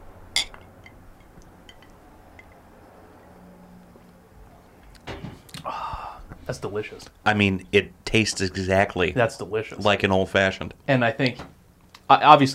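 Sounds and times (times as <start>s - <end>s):
two Old Fashioned cocktail glasses clinking in a toast: 0.4s - 2.6s
speech: 6.5s - 11.5s, 12.1s - 12.5s.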